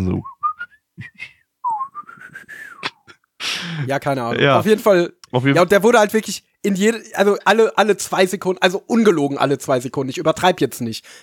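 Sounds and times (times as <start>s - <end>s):
speech: 0.0s - 0.3s, 3.6s - 11.2s
person whistling a wavering tune imitating a whistle sound effect: 0.2s - 3.1s
brief breathy hiss by mouth: 3.4s - 3.9s.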